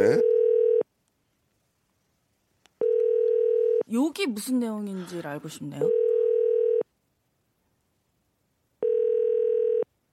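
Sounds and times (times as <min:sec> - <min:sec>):
telephone ringback tone while calling: 0:00.2 - 0:00.8, 0:02.8 - 0:03.8, 0:05.8 - 0:06.8, 0:08.8 - 0:09.9
speech: 0:03.9 - 0:06.0.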